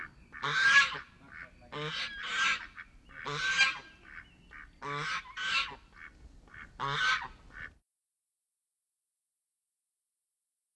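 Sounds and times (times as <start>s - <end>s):
geese honking while moving: 0.0s - 7.7s
softer higher goose calls: 0.0s - 7.7s.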